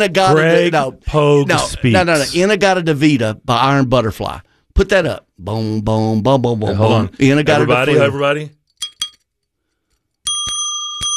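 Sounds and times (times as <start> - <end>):
speech: 0.0 - 8.6
small bright bell with a bicycle-bell ring: 10.2 - 11.1.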